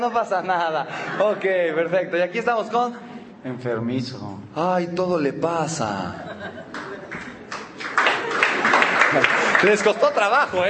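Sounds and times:
laughter: 0.0 - 2.1, 5.9 - 10.6
speech: 0.0 - 6.6, 9.1 - 10.6
audience clapping hands: 6.7 - 10.6.

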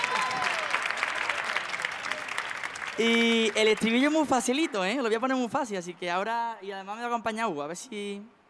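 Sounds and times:
audience applause: 0.0 - 5.0
speech: 3.0 - 8.4.

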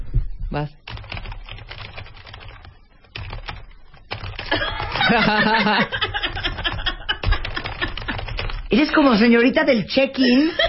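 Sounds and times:
speech: 0.5 - 1.0, 5.1 - 6.1, 8.7 - 10.6
rapid typing on a computer keyboard on a small mat: 0.9 - 8.9
laughter: 4.4 - 8.4, 10.2 - 10.6.

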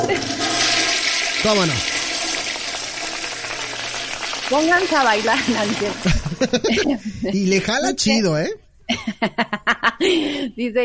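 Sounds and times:
laughter: 0.0 - 0.4, 5.2 - 8.2, 8.9 - 10.5
speech: 0.0 - 0.6, 1.4 - 2.0, 4.5 - 10.8
running water: 0.0 - 6.7.

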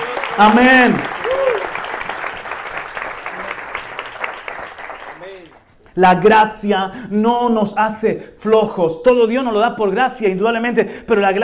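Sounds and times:
audience applauding loudly: 0.0 - 5.9
speech: 0.4 - 1.1, 6.0 - 11.4.

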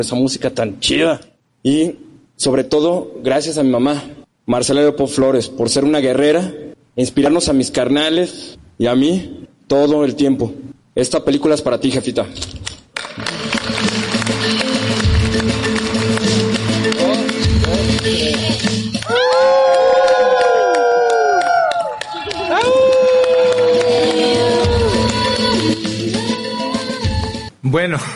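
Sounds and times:
speech: 0.0 - 13.4, 27.7 - 28.1
large audience applauding and cheering at a ceremony: 13.0 - 26.2.

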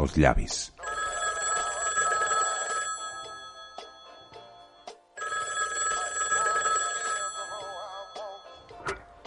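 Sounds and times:
speech: 0.0 - 0.8
telephone ringing in electronic trilling bursts: 0.8 - 8.8.

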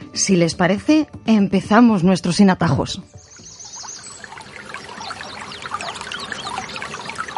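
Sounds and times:
speech: 0.2 - 3.2
river water flowing and gurgling: 3.0 - 7.3.

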